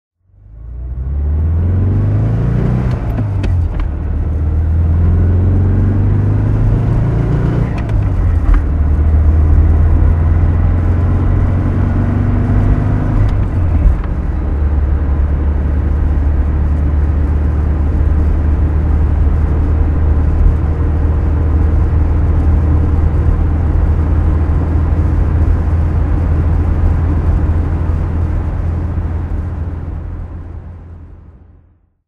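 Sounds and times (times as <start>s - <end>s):
Porsche 356C cabriolet driving: 0.2s - 31.8s.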